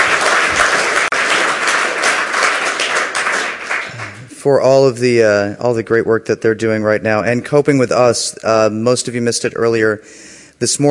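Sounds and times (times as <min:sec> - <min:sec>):
conference audience applause: 0:00.0 - 0:04.3
speech: 0:04.4 - 0:10.8.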